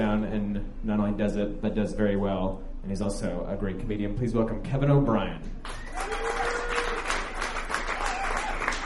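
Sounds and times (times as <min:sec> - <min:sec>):
speech: 0:00.1 - 0:06.2
room full of people applauding: 0:05.7 - 0:08.8.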